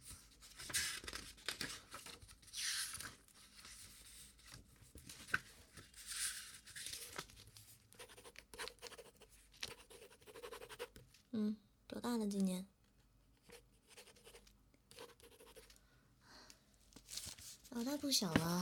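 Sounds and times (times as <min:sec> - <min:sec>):
paper shuffling: 0:00.2 - 0:07.8, 0:16.9 - 0:18.6
pen writing a police statement record on paper: 0:08.0 - 0:11.0, 0:13.4 - 0:15.7
speech: 0:11.4 - 0:12.7, 0:17.8 - 0:18.6.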